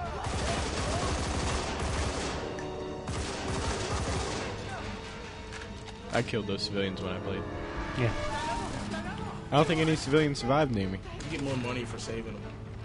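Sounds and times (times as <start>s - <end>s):
video game gunfire: 0.1s - 4.6s
speech: 6.2s - 8.3s, 9.5s - 12.6s.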